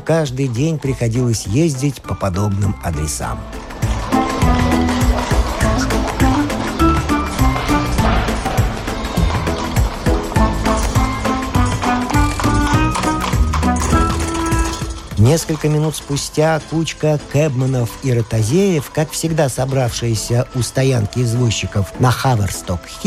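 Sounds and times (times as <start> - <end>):
speech: 0.1 - 3.6, 15.2 - 23.0
piebald horse galloping while pulling a cab: 3.2 - 23.0
cab rattling clatter: 3.5 - 16.3.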